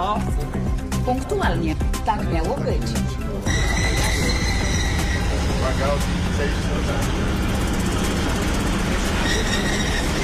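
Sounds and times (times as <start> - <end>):
speech: 0.0 - 3.8, 5.6 - 7.4, 9.3 - 10.1
diesel passenger train brakes squealing: 3.5 - 10.2
diesel passenger train rolling into a station: 3.5 - 10.2.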